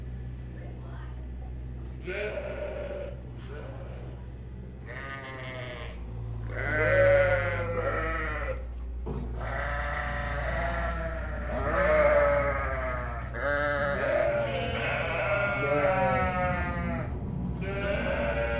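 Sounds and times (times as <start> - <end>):
low hum: 0.0 - 18.5
several sheep bleating: 2.0 - 4.2, 4.8 - 8.7, 9.4 - 18.5.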